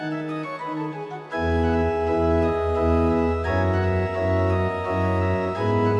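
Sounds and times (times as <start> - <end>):
digital organ playing: 0.1 - 5.9.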